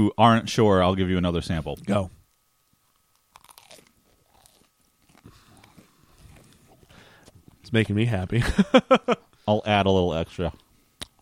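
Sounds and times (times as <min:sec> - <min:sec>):
speech: 0:00.0 - 0:02.2, 0:07.7 - 0:10.6
person chewing food with wet crunchy bites: 0:02.9 - 0:08.0.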